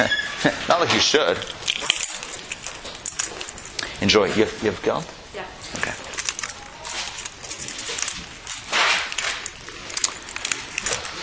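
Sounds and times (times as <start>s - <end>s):
speech: 0.0s - 1.6s, 4.0s - 5.2s
keys jangling and scraping, stuck in a stubborn lock: 1.4s - 3.9s, 5.7s - 11.2s.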